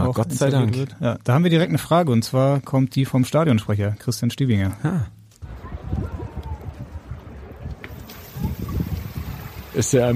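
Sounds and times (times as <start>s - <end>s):
speech: 0.1s - 5.2s, 9.8s - 10.1s
poolside outdoor shower running water: 7.9s - 10.1s.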